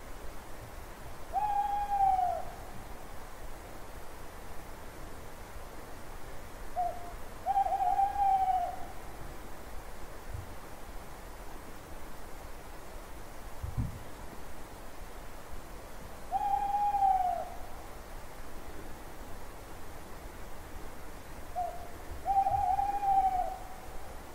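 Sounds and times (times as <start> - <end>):
quiet background noise: 0.0 - 24.3
owl giving sustained falling hoots: 1.3 - 2.7, 6.8 - 9.0, 16.3 - 17.7, 21.6 - 23.9.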